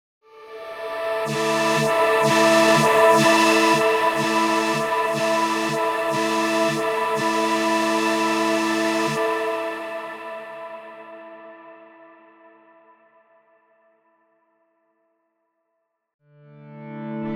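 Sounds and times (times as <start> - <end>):
wavetable MPE synth presets: 0.5 - 11.2.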